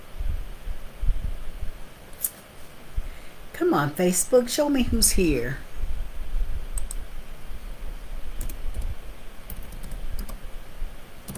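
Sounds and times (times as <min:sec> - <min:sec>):
steady hiss: 0:00.0 - 0:11.3
speech: 0:03.6 - 0:05.6
typing on a computer keyboard: 0:09.5 - 0:10.4.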